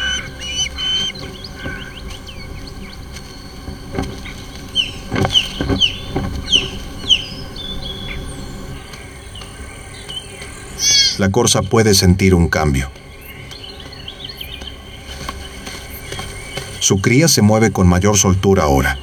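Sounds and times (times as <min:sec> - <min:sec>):
faint outdoor ambience: 0:00.0 - 0:19.0
osprey chicks squawking begging for fish: 0:00.0 - 0:19.0
steady hum of insects: 0:00.0 - 0:19.0
speech: 0:11.2 - 0:13.0, 0:16.9 - 0:19.0.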